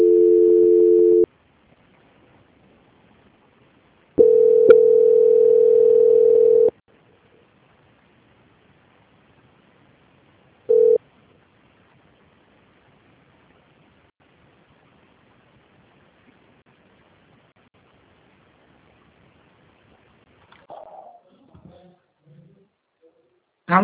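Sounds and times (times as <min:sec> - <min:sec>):
telephone line tones during a call transfer: 0:00.0 - 0:01.3, 0:04.2 - 0:06.7, 0:10.7 - 0:11.0.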